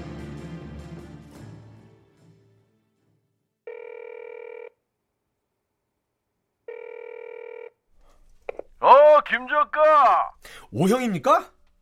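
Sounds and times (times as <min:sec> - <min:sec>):
telephone ringing with an electronic trill: 0:03.7 - 0:04.8, 0:06.7 - 0:07.8
speech: 0:09.4 - 0:11.6.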